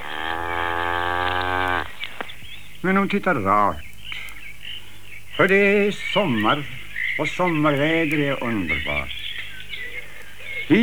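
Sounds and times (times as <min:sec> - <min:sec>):
cow mooing: 0:00.0 - 0:02.2
speech: 0:02.8 - 0:03.9, 0:05.4 - 0:09.2, 0:10.7 - 0:10.8.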